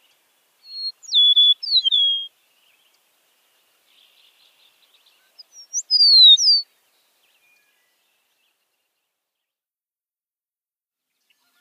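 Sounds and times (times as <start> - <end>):
Eastern meadowlark song of sweet whistled notes: 0.0 - 3.0, 3.8 - 9.5.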